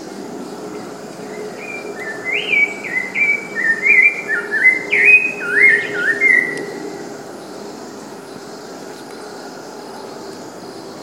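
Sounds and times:
Rufous-bellied thrush singing brief fluted whistles in Cantareira, São Paulo state, Brazil: 1.2 - 8.0.

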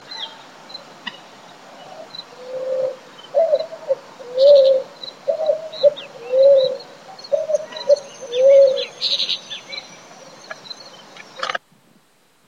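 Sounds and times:
birds chirping in Uruguay: 0.0 - 11.6
Picazuro pigeon cooing in Uruguay: 1.8 - 10.6.

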